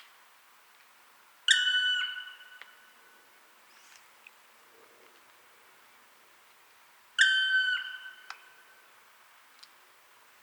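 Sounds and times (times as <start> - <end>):
Dryocopus martius black woodpecker whistled call: 1.5 - 2.8, 7.2 - 8.4.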